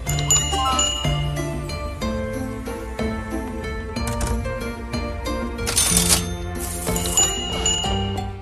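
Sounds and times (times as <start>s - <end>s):
busy tuneful game music: 0.0s - 8.3s
bright cash register chimes: 0.1s - 1.4s, 5.6s - 8.3s
coins jingling: 5.6s - 8.0s.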